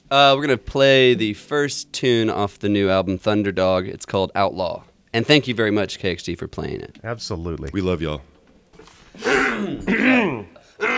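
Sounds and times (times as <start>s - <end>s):
speech: 0.1s - 8.3s
singer clearing throat in a radio studio: 9.2s - 10.9s.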